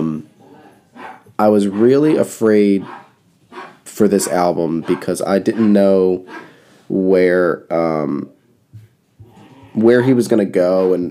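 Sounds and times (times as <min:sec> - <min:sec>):
dogs barking: 0:00.6 - 0:06.6
speech: 0:01.4 - 0:03.0, 0:04.0 - 0:08.4, 0:09.8 - 0:11.0.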